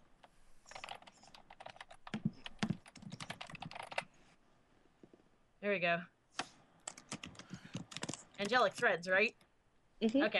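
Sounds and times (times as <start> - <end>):
typing on a computer keyboard: 0.7 - 4.1, 6.8 - 8.9
speech: 5.6 - 6.2, 8.4 - 9.4, 10.0 - 10.3.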